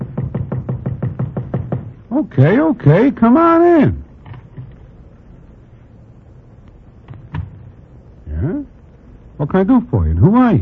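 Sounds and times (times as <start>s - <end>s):
quick dull knocks on a door: 0.0s - 2.0s
speech: 2.2s - 4.0s, 9.5s - 10.6s.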